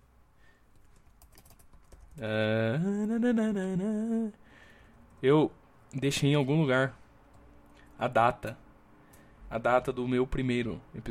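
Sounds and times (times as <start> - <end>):
typing on a computer keyboard: 0.8 - 2.3
speech: 2.2 - 4.4, 5.2 - 7.0, 8.0 - 8.6, 9.5 - 11.0.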